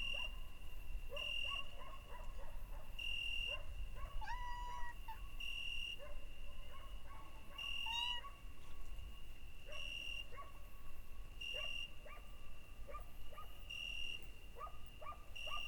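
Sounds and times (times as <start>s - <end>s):
night crickets chirping: 0.0s - 15.6s
domestic cat meowing at night: 4.2s - 5.1s, 7.8s - 8.2s.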